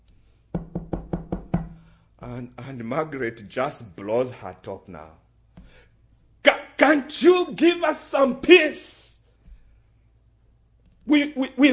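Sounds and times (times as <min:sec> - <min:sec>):
knocking on a wooden door: 0:00.5 - 0:01.9
speech: 0:02.2 - 0:05.2, 0:06.8 - 0:09.1, 0:11.1 - 0:11.7.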